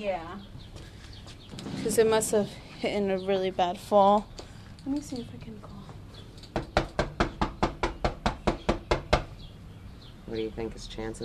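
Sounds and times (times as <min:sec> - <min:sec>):
speech: 0:00.0 - 0:00.8, 0:01.5 - 0:05.8, 0:10.3 - 0:11.2
rapid knocking on a resident's door: 0:06.5 - 0:09.3.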